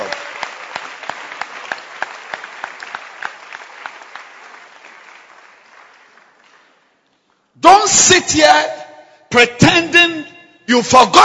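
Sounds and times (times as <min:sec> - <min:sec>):
church congregation clapping hands in a steady rhythm: 0:00.0 - 0:07.4
speech: 0:08.2 - 0:11.2.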